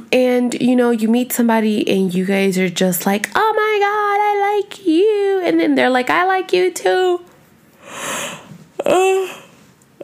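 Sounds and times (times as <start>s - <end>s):
speech: 0.1s - 7.3s, 8.8s - 9.4s
person yawning: 8.0s - 10.0s.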